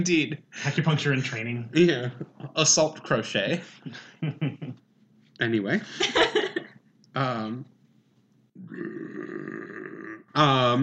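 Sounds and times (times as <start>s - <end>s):
speech: 0.0s - 4.7s, 5.4s - 6.5s, 7.2s - 7.7s, 10.4s - 10.8s
person burping: 8.6s - 10.8s.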